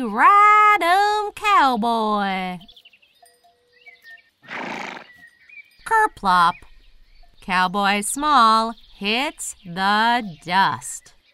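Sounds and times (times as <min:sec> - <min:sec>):
speech: 0:00.0 - 0:00.5, 0:01.6 - 0:02.7, 0:05.9 - 0:06.7, 0:07.4 - 0:11.1
bucking bronco horse whinnying: 0:04.4 - 0:05.2.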